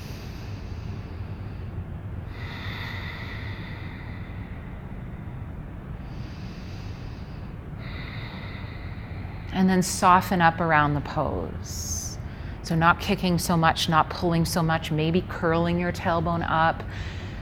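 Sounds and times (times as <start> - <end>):
deep breathing during yoga pose: 0.0 - 12.7, 16.2 - 17.4
speech: 9.6 - 12.0, 12.7 - 17.2.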